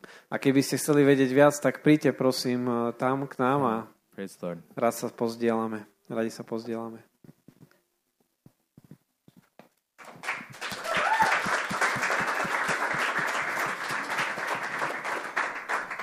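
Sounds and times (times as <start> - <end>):
speech: 0.3 - 7.4
crowd applauding loudly: 10.0 - 16.0
scattered claps: 10.0 - 16.0.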